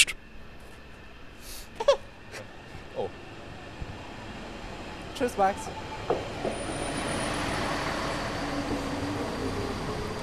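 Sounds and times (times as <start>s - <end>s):
new regional train rumble pulling into a station: 0.3s - 10.2s
high squeal of regional train braking wheels: 5.6s - 10.2s.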